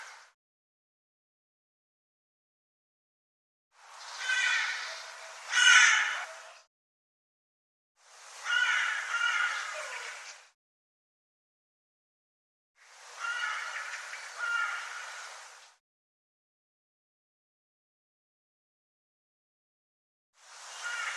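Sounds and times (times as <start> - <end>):
bird harsh raspy calls: 4.0 - 6.6, 8.4 - 10.2, 13.2 - 15.2, 20.7 - 21.1.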